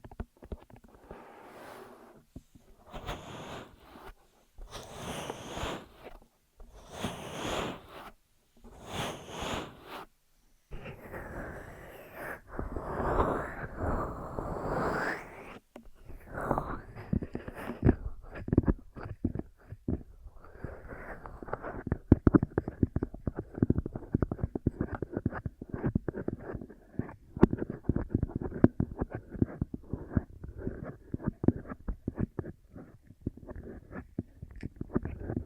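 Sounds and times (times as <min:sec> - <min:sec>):
ear massage and cleaning rubbing on a binaural microphone: 0:00.0 - 0:35.4.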